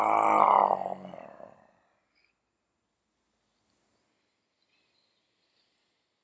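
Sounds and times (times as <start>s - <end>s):
person roaring like a lion to release anger: 0.0s - 1.7s.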